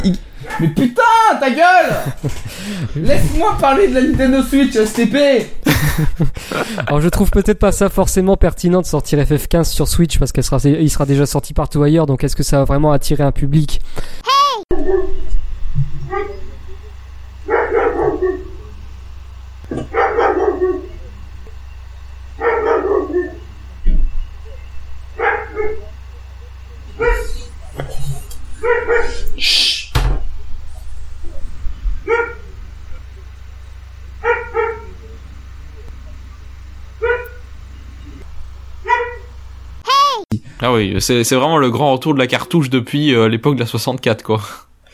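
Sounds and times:
laughter: 0.0 - 1.0, 1.8 - 3.9, 5.6 - 7.1, 25.8 - 29.5
speech: 0.0 - 15.3, 19.7 - 20.2, 27.0 - 29.7, 40.3 - 44.7
steady low hum: 2.0 - 5.0, 14.7 - 39.8
dog barking: 14.7 - 29.5, 30.6 - 39.3.

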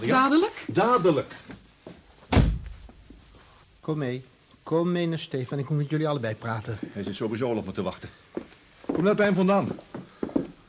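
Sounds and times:
speech: 0.0 - 1.5, 3.9 - 8.2, 9.0 - 9.9
door slamming shut: 2.3 - 2.9.

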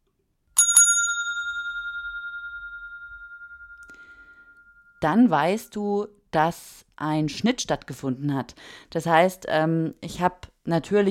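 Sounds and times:
reception desk bell ringing: 0.6 - 5.0
speech: 5.0 - 11.0.

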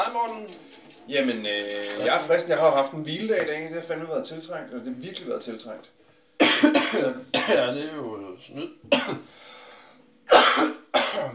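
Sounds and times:
speech: 0.0 - 6.0, 6.6 - 9.5, 10.6 - 11.3
person coughing harshly with raspy wheezing: 6.4 - 7.7, 8.6 - 9.3, 10.3 - 11.3.

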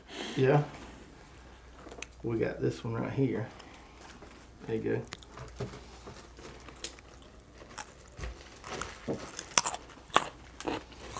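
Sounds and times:
speech: 0.4 - 0.8, 2.2 - 3.6, 4.6 - 5.9, 9.1 - 9.3
person biting and chewing a raw carrot while taste-testing carrots: 1.0 - 2.2, 3.5 - 11.1.

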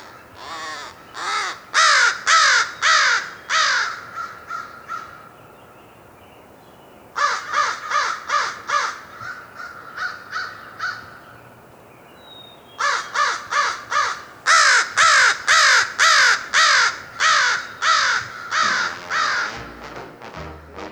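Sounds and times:
American crow cawing: 0.0 - 5.3, 7.2 - 11.3, 12.8 - 19.8
faint noise: 0.0 - 20.9.

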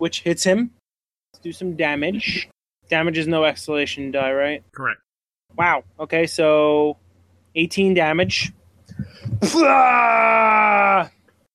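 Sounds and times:
speech: 0.0 - 0.8, 1.4 - 7.0, 7.6 - 11.2
man screaming in rage: 9.4 - 11.1.

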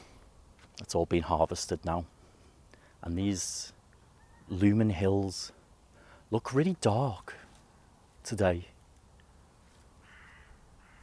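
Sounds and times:
speech: 0.8 - 2.2, 3.0 - 3.8, 4.5 - 5.6, 6.3 - 7.4, 8.2 - 8.7
distant crow cawing: 10.0 - 11.0.

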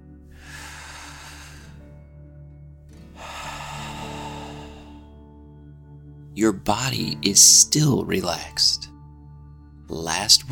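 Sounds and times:
person breathing in through nose and out through mouth: 0.2 - 2.2, 3.0 - 5.5
speech: 6.4 - 8.9, 9.9 - 10.5.

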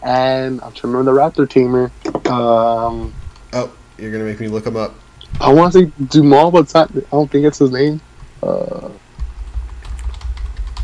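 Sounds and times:
speech: 0.0 - 9.0
keystrokes on a computer keyboard typing a search query: 8.6 - 10.8.

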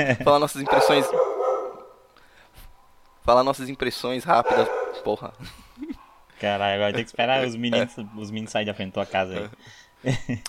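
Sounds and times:
speech: 0.0 - 1.3, 3.2 - 5.8, 6.4 - 10.4
dog barking: 0.6 - 2.0, 4.3 - 5.2, 5.9 - 6.3
laughter: 9.0 - 10.4.

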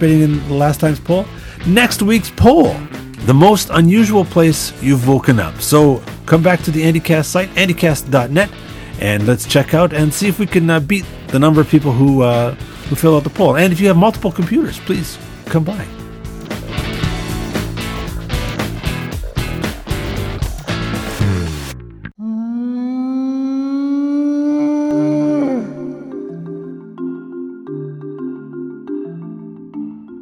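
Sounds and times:
speech: 0.0 - 16.0
dense loud music: 15.2 - 22.0
whale-like howling call sound effect: 22.7 - 26.4.

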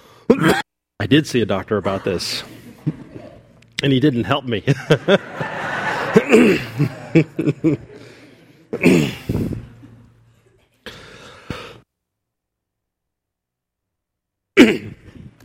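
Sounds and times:
person coughing: 0.3 - 0.7, 6.2 - 6.8, 8.7 - 9.5, 14.6 - 15.3
speech: 0.3 - 3.0, 3.8 - 5.6, 6.2 - 8.0, 8.8 - 9.6
laughter: 1.7 - 3.6, 4.6 - 10.6.

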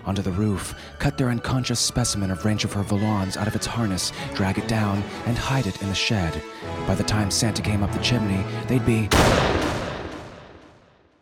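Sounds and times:
speech: 0.1 - 9.8
single loud rifle shot: 9.1 - 11.0
rifle shot echo: 9.1 - 11.1.

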